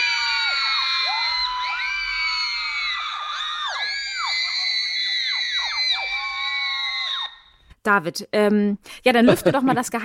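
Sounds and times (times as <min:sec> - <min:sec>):
large crowd of fans screaming hysterically: 0:00.0 - 0:07.5
speech: 0:07.9 - 0:10.0
laughter: 0:09.2 - 0:10.0.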